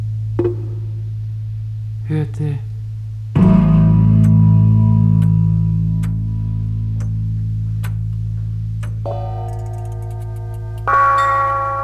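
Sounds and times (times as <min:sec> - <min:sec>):
speech: 0:02.1 - 0:02.7
faint ticking clicks: 0:03.4 - 0:11.8
copper bell ringing: 0:09.1 - 0:11.8.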